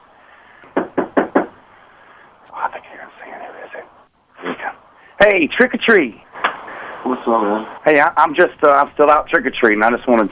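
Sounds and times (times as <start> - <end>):
knocking on a door while trick-or-treating: 0.8 - 1.6
speech: 2.6 - 4.6, 5.2 - 6.2, 7.0 - 10.2.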